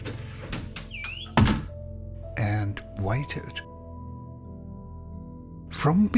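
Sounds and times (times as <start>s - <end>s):
closet door closing in a bedroom: 0.0s - 1.8s
speech: 2.4s - 3.7s, 5.8s - 6.1s.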